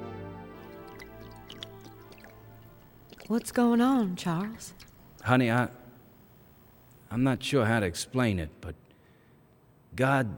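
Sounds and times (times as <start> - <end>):
beer splashing and trickling into a kitchen drain: 0.6 - 6.2
drips and splats: 0.6 - 7.0
steady low hum: 0.6 - 7.2
speech: 3.3 - 5.8, 7.1 - 8.8, 10.0 - 10.3.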